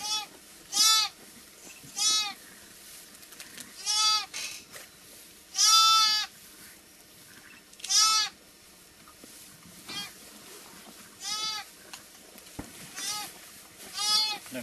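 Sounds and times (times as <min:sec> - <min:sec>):
lamb and mother sheep bleating: 0:00.0 - 0:01.2, 0:03.8 - 0:04.3, 0:05.5 - 0:06.3, 0:07.9 - 0:08.4, 0:11.2 - 0:11.7, 0:13.0 - 0:13.3, 0:13.9 - 0:14.4.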